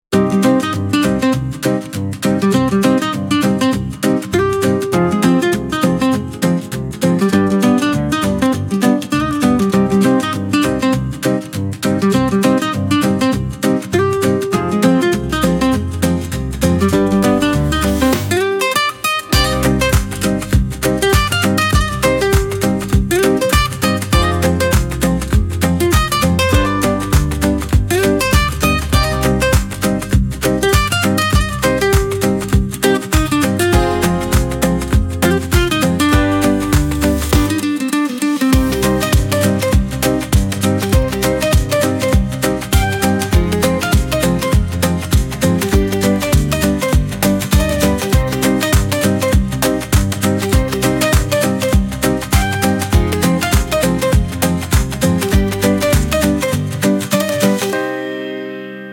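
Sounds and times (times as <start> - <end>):
100 bpm Spanish rhythm guitar instrumental: 0.1 - 58.9.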